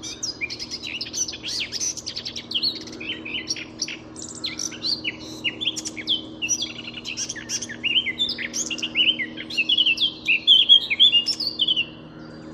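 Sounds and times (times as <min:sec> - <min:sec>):
Eurasian blackcap warbling: 0:00.0 - 0:11.9.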